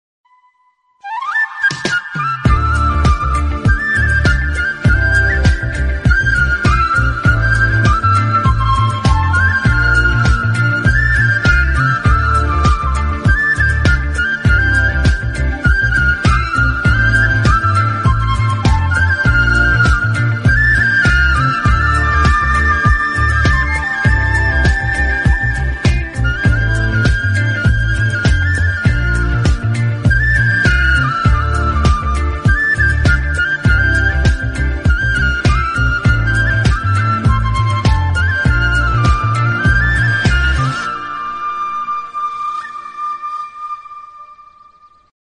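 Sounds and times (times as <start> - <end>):
instrumental flute ringtone: 0.3 - 45.1.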